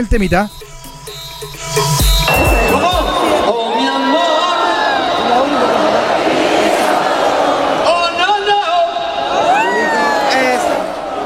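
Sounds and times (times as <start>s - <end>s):
speech: 0.0s - 0.7s, 1.4s - 2.9s
live stadium concert music: 0.0s - 4.5s
huge stadium concert crowd roaring, cheering and singing along: 1.7s - 11.2s.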